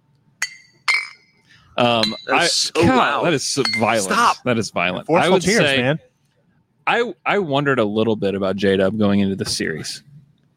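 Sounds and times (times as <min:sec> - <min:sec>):
glass bottles clinking together in a cheers toast: 0:00.4 - 0:02.7, 0:03.6 - 0:04.2
speech: 0:01.8 - 0:06.1, 0:06.9 - 0:10.1.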